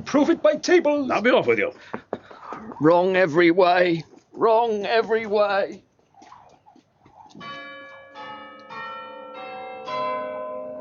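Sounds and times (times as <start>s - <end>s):
speech: 0.0s - 2.0s, 2.6s - 5.9s
church bells chiming the quarter hour: 7.4s - 10.7s.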